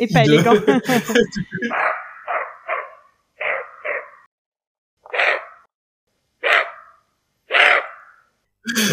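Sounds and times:
speech: 0.0s - 2.0s
laughter: 0.1s - 1.8s
deer barking: 1.7s - 4.3s, 5.1s - 5.7s, 6.4s - 8.2s.

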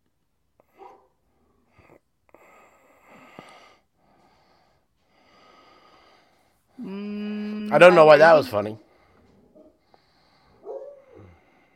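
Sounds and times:
dog barking: 0.7s - 1.2s, 10.6s - 11.4s
speech: 7.7s - 8.8s.

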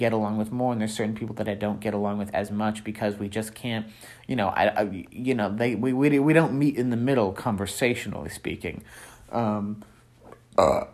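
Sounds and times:
speech: 0.0s - 9.9s, 10.6s - 10.9s
short burst of voice or throaty noise: 10.3s - 10.9s
loud low rumbling burp: 10.5s - 10.9s.

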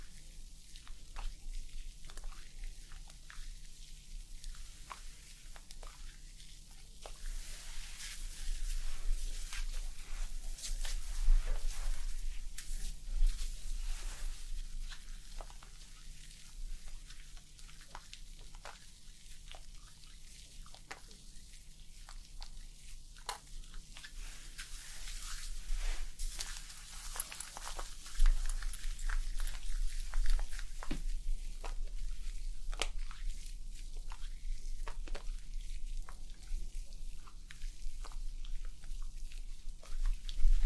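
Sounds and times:
dry scratching and brushing against hair or scalp: 0.0s - 19.6s, 22.9s - 35.8s
faint low hum: 0.0s - 40.6s.

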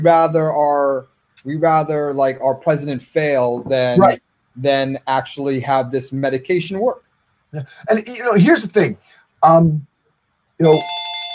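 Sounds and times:
speech: 0.0s - 9.9s, 10.6s - 11.0s
telephone ringing with an incoming call on a call-in line: 10.7s - 11.3s.

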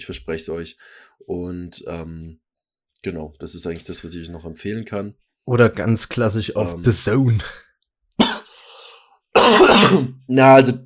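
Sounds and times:
speech: 0.0s - 2.4s, 3.0s - 7.6s, 9.5s - 10.8s
person coughing: 8.2s - 8.6s, 9.4s - 10.2s.

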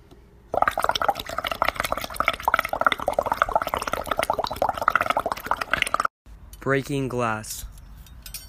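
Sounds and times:
boiling cauldron bubbling, creepy Halloween sound effect: 0.5s - 6.1s
speech: 6.6s - 7.7s.

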